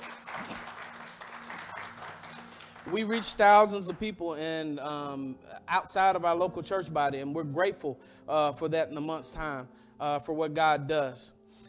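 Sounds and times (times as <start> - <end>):
audience applauding: 0.0 - 4.1
speech: 2.9 - 11.4.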